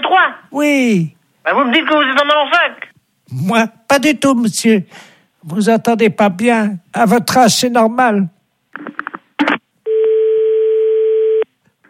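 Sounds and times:
speech: 0:00.1 - 0:09.0
short telephone beeps after a call is cut off: 0:09.9 - 0:11.5.

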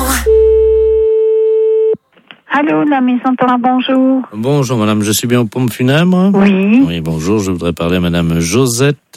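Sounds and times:
steady telephone tone after a call is hung up: 0:00.2 - 0:02.0
speech: 0:02.5 - 0:09.1.

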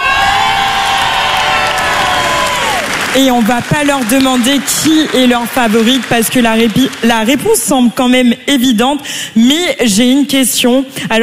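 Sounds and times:
large crowd of contestants' families cheering and shouting: 0:00.0 - 0:04.7
speech: 0:03.1 - 0:11.2.

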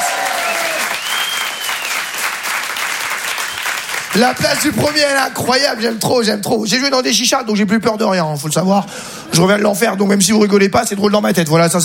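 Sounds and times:
audience applause at a stand-up comedy show: 0:00.0 - 0:05.0
thin whistle: 0:00.9 - 0:02.1
speech: 0:04.1 - 0:11.8.

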